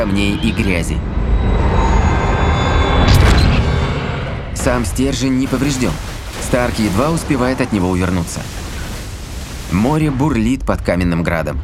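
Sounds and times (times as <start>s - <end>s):
speech: 0.0s - 1.7s, 4.6s - 8.5s, 9.7s - 11.6s
explosion roar from a film scene: 2.4s - 10.4s.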